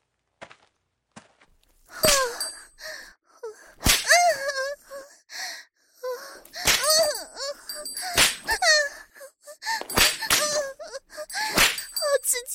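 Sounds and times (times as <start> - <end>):
person moaning and gasping: 2.0 - 5.2, 6.0 - 12.2
whip cracking: 3.8 - 4.1, 11.6 - 11.9.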